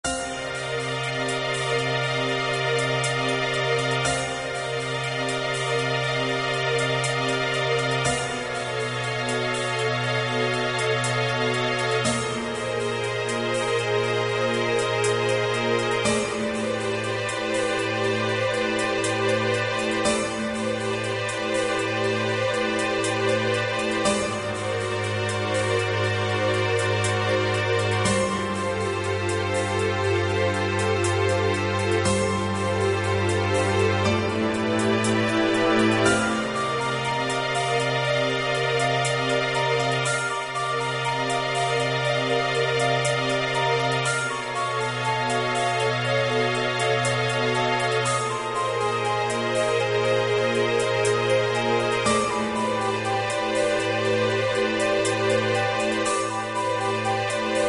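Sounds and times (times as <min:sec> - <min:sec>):
piano in C minor: 0:00.0 - 0:57.6.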